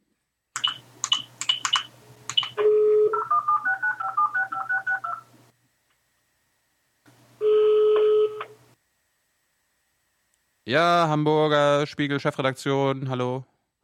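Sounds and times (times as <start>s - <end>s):
telephone keypad DTMF tones dialing a number: 0.6s - 5.2s
speech: 10.7s - 13.5s.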